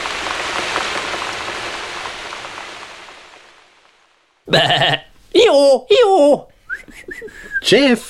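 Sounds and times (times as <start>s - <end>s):
rain falling: 0.0s - 8.0s
loud brief bleat-like cry: 4.5s - 5.1s
speech: 4.5s - 8.0s.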